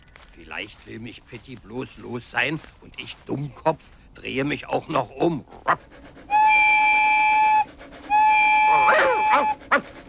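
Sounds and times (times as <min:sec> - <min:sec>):
speech: 0:00.5 - 0:06.0
locomotive whistle blasts: 0:06.3 - 0:09.7.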